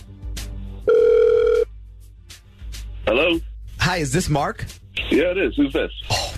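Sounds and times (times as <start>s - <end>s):
outgoing telephone ringback tone: 0.9s - 1.7s
speech: 3.1s - 6.3s.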